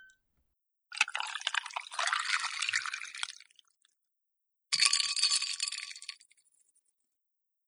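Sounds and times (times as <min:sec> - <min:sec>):
plum wine umeshu poured into a glass: 0:01.0 - 0:03.5, 0:04.8 - 0:06.2.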